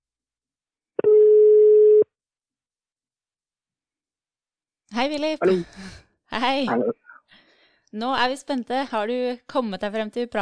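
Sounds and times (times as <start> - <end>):
telephone ringing tone from an outgoing call: 1.0 - 2.0
speech: 5.0 - 7.0, 7.9 - 10.3.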